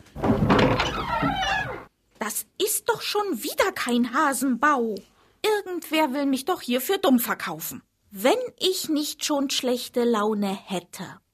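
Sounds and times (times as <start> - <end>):
door thudding open with a heavy knock: 0.0 - 1.9
rumbling slightly creaking movement of a door: 0.0 - 1.9
speech: 2.3 - 11.2.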